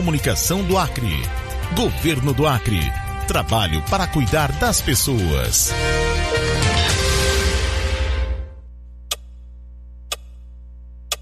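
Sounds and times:
speech: 0.0 - 6.0
music: 0.0 - 8.6
low hum: 8.6 - 11.1
clock ticking: 10.1 - 10.4.

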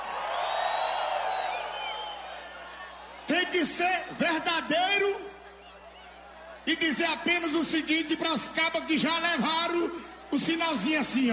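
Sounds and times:
large crowd shouting and cheering: 0.0 - 11.3
high whistles: 0.4 - 2.4
speech: 3.5 - 5.3, 6.7 - 11.3.

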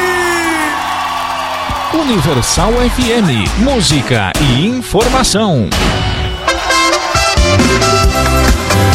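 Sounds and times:
crowd shouting and whooping in answer to a singer's call: 0.0 - 3.6, 6.4 - 8.8
speech: 1.9 - 6.2, 7.5 - 8.6.

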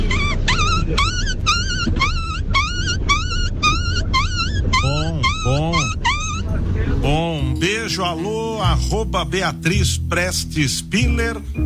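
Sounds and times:
person imitating a dog yelping in pain: 0.0 - 6.6
low rumbling background: 0.0 - 11.6
speech: 8.2 - 11.6.

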